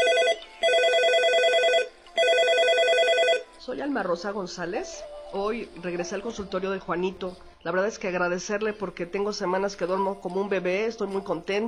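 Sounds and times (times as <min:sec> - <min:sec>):
telephone ringing with an electronic warble: 0:00.0 - 0:03.6
speech: 0:03.7 - 0:11.6.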